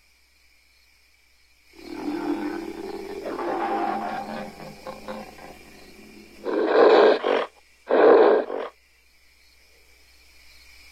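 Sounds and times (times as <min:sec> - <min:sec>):
angry ape growling: 0:01.8 - 0:08.7.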